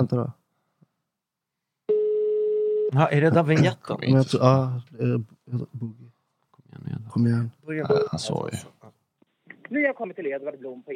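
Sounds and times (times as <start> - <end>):
speech: 0.0 - 0.4, 2.9 - 8.8, 9.7 - 10.9
steady electronic telephone tone: 1.9 - 2.9.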